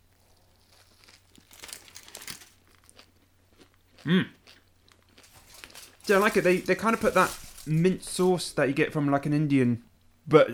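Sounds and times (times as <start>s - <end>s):
foil wrapper crinkling while food is unwrapped: 0.6s - 3.1s, 5.0s - 8.3s
speech: 4.0s - 4.4s, 6.1s - 10.5s.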